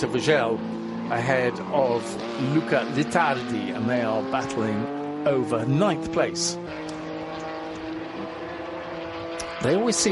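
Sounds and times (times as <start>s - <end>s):
speech: 0.0s - 6.9s, 9.6s - 10.0s
small Lotus Elite racing car engine droning in a sports car race: 0.0s - 10.0s.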